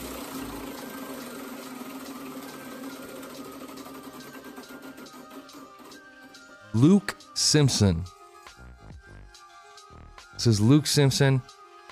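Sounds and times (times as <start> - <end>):
prize wheel being spun: 0.0 - 8.2
speech: 6.8 - 8.2, 10.4 - 11.6.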